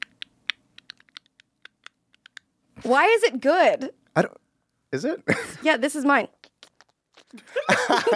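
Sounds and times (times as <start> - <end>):
fingers typing on a computer keyboard: 0.0 - 2.4
speech: 2.8 - 6.3, 7.3 - 8.1
laughter: 7.4 - 8.1.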